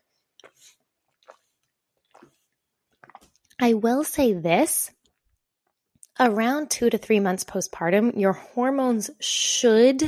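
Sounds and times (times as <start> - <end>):
person sipping water: 0.0 - 3.6
speech: 0.4 - 0.8, 3.6 - 5.0, 6.2 - 10.0.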